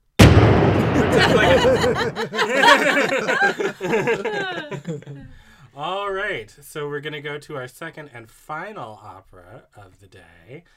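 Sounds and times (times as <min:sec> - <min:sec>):
cannon blast: 0:00.2 - 0:02.2
people laughing: 0:00.9 - 0:05.4
people chattering: 0:01.0 - 0:05.3
speech: 0:01.2 - 0:10.7.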